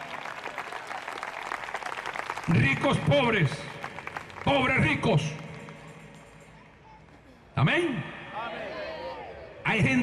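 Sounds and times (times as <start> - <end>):
crowd applauding in praise of the Lord: 0.0 - 6.3
speech: 2.5 - 3.7, 4.4 - 5.4, 7.6 - 8.1, 9.7 - 10.0.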